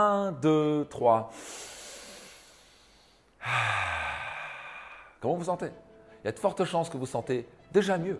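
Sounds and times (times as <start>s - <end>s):
speech: 0.0s - 1.7s, 3.4s - 4.0s, 5.2s - 8.1s
forceful sigh-like exhale: 1.3s - 5.2s
slow deep breath in for a relaxation breathing exercise: 1.3s - 5.2s.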